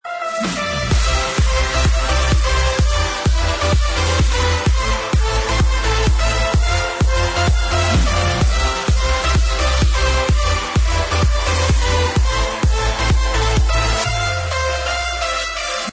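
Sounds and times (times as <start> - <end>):
background music: 0.0 - 15.9.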